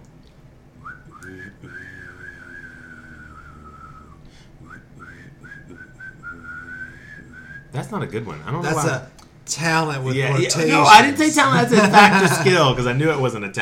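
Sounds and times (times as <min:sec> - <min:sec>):
person whistling imitating a descending spaceship: 0:00.8 - 0:07.7
speech: 0:07.8 - 0:13.6
laughter: 0:10.5 - 0:13.2.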